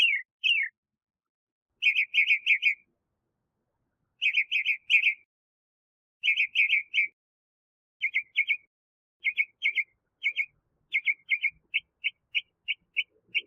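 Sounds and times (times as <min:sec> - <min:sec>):
Northern mockingbird Mimus polyglottos chirping: 0:00.0 - 0:00.8, 0:01.8 - 0:02.9, 0:04.2 - 0:05.3, 0:06.2 - 0:07.2, 0:08.0 - 0:13.4.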